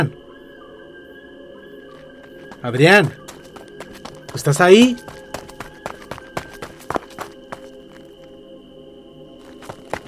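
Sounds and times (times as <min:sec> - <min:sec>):
running footsteps: 0:01.9 - 0:08.3, 0:09.4 - 0:10.0
speech: 0:02.6 - 0:03.2, 0:04.4 - 0:05.2.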